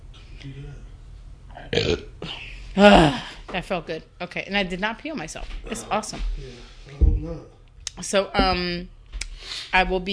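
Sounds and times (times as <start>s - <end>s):
speech: 0.4s - 0.9s, 1.6s - 10.1s
loud raspy burp: 1.6s - 2.2s
brief trailing voice sound: 1.7s - 3.4s, 5.7s - 6.0s.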